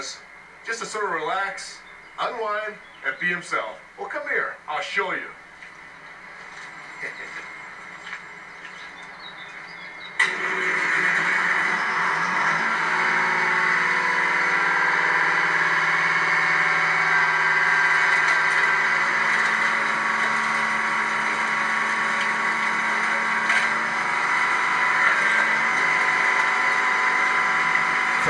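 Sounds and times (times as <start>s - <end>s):
speech: 0.0s - 5.4s, 7.0s - 7.5s
laughter: 7.0s - 7.6s
car crusher crushing a car in junkyard: 10.1s - 28.2s.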